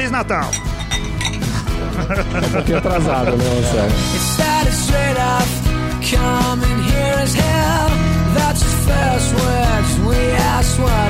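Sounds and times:
speech: 0.1s - 0.7s, 2.0s - 11.0s
glasses clinking in a toast: 0.3s - 1.9s
laughter: 1.5s - 4.2s.

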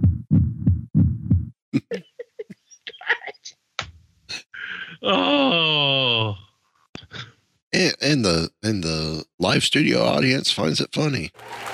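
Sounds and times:
heartbeat sound effect thumps: 0.0s - 1.6s
speech: 5.0s - 6.0s, 8.0s - 11.6s.

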